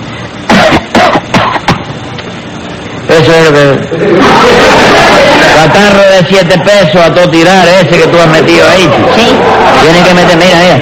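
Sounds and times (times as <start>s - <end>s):
forced coughing put on to sound like bronchitis: 0.4s - 2.0s
speech: 3.2s - 4.8s, 5.6s - 10.8s
laughter: 3.8s - 7.0s, 8.0s - 10.8s.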